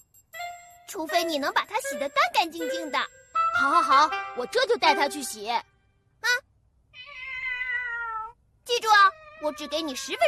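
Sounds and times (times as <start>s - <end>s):
speech: 0.9s - 5.7s, 9.4s - 10.2s
cat meowing: 6.9s - 10.2s.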